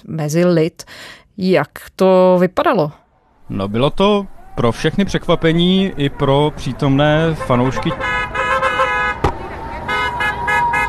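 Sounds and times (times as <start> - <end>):
speech: 0.0 - 8.4
car horns honking from passing cars at the gate of Walter Reed hospital: 7.1 - 10.8.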